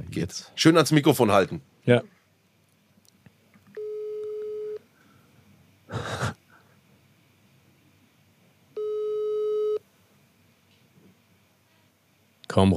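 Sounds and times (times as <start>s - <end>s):
speech: 0.2s - 2.2s, 12.6s - 12.7s
phone ringback tone over a speakerphone: 3.8s - 4.8s, 8.8s - 9.8s
laughter: 5.9s - 6.4s.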